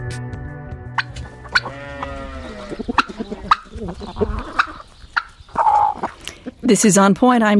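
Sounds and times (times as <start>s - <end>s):
drawn-out animal call: 1.0s - 6.6s
chickens clucking and squawking: 1.0s - 6.7s
farmyard clatter: 1.0s - 7.1s
speech: 6.7s - 7.5s.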